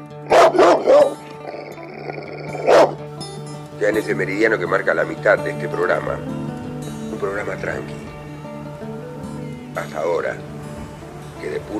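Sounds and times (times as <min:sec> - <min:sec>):
dog barking: 0:00.3 - 0:01.7, 0:02.5 - 0:03.0
speech: 0:03.8 - 0:06.5, 0:07.2 - 0:08.0, 0:09.8 - 0:10.5, 0:11.4 - 0:11.7.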